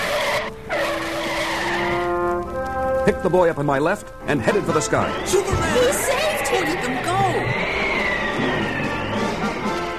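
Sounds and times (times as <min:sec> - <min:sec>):
truck skidding to a stop on a street with tire screech: 0:00.0 - 0:02.4, 0:04.3 - 0:09.9
speech: 0:03.1 - 0:07.4.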